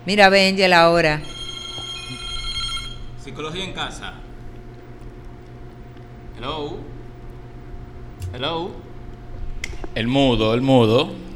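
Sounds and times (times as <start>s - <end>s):
speech: 0.0s - 1.4s, 3.3s - 4.3s, 6.4s - 7.0s, 8.3s - 8.8s, 9.8s - 11.3s
telephone ringing with incoming call: 1.2s - 4.3s.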